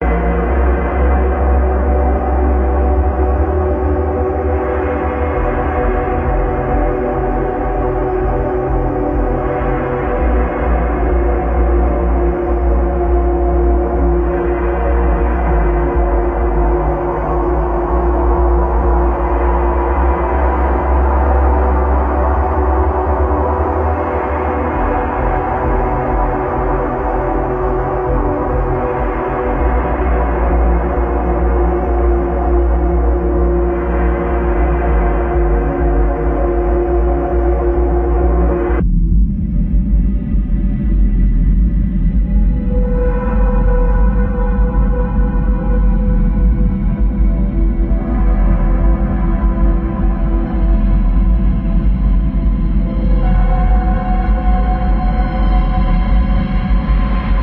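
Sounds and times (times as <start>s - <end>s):
dark soundscape: 0.0s - 57.4s.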